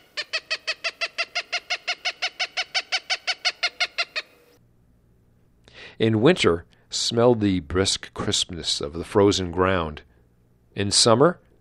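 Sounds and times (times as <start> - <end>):
Cooper's hawk harsh cak-cak-cak call: 0.0 - 4.6
speech: 6.0 - 10.1, 10.8 - 11.4.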